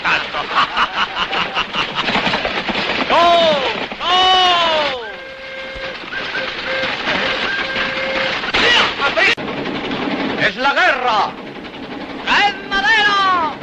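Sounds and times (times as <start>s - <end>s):
laughter: 0.0s - 2.7s
train rumbling as it starts to move: 0.0s - 13.6s
train whistle-like tones: 4.0s - 8.9s.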